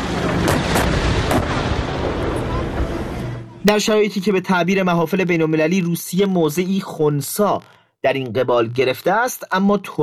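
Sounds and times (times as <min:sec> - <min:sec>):
heavy artillery fire booming: 0:00.0 - 0:03.8
constant rumbling background: 0:00.0 - 0:04.3
speech: 0:03.6 - 0:10.0.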